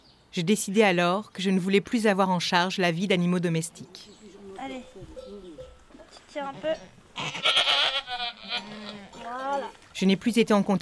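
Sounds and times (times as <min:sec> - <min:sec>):
speech: 0:00.4 - 0:05.5, 0:06.3 - 0:10.8
goat bleating while giving birth: 0:05.0 - 0:09.7.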